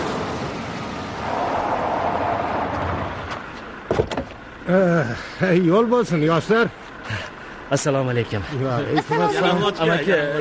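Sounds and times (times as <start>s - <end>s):
car approaching along a road and stopping: 0.0s - 10.3s
short clunks: 3.3s - 4.4s
speech: 4.7s - 10.3s.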